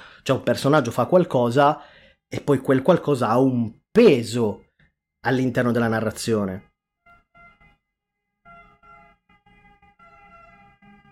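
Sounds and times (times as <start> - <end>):
speech: 0.2 - 4.6, 5.2 - 6.7
ambulance siren wailing in the street: 6.8 - 11.1.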